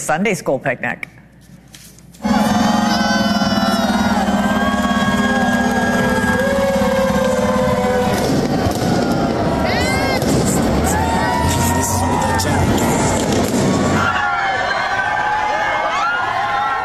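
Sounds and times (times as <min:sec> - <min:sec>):
speech: 0:00.1 - 0:01.2
sharp bangs: 0:02.2 - 0:14.2
large outdoor crowd roaring and cheering: 0:02.2 - 0:16.8.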